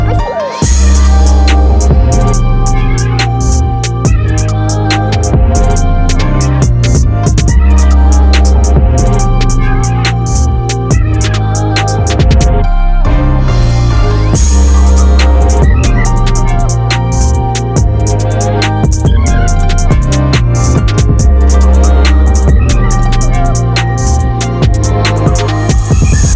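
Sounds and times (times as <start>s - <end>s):
UK drill type beat: 0.1s - 12.7s, 13.6s - 26.3s.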